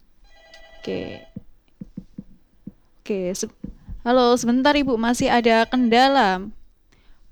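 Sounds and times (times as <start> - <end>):
phone call ringing: 0.2 - 2.0
speech: 0.8 - 1.4, 3.1 - 6.6.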